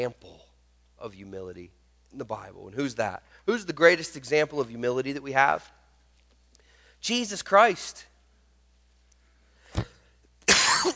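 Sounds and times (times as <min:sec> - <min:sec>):
speech: 0:00.0 - 0:00.4, 0:01.0 - 0:05.8, 0:07.0 - 0:08.1
loud coughs: 0:10.5 - 0:10.9.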